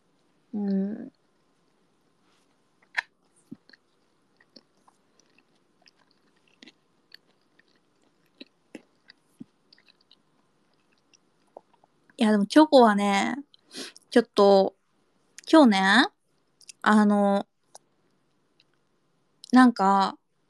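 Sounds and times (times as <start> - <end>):
person chewing beef salt ramen: 2.8 - 12.1
speech: 12.2 - 14.8, 15.5 - 16.2, 16.8 - 17.5, 19.5 - 20.2.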